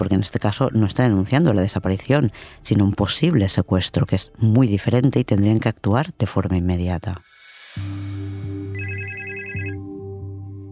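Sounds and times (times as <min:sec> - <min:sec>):
speech: 0:00.0 - 0:08.0
brief higher pulsing trill: 0:07.2 - 0:09.8
telephone ringing with a steady electronic tone: 0:08.7 - 0:09.8.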